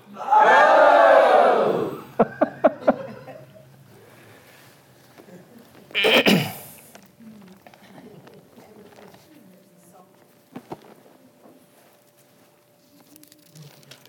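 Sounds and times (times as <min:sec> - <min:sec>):
audience shouting ho loudly together: 0:00.0 - 0:02.2
laughter: 0:01.7 - 0:03.8.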